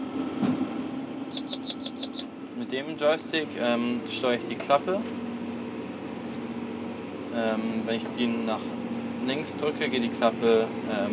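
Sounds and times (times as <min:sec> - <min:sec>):
steady low drone of a running tractor engine: 0:00.0 - 0:11.1
baler warning beeper: 0:01.3 - 0:02.3
speech: 0:02.7 - 0:05.3, 0:07.4 - 0:11.1.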